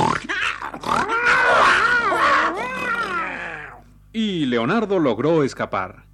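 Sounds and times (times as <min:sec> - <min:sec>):
bear growling and snarling while fighting: 0:00.0 - 0:04.0
speech: 0:04.6 - 0:06.1.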